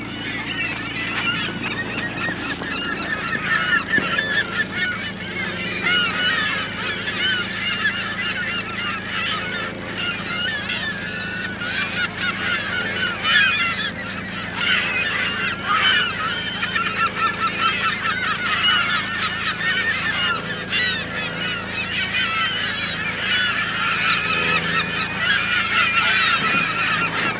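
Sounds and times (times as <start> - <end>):
seagulls: 0.0 - 27.3.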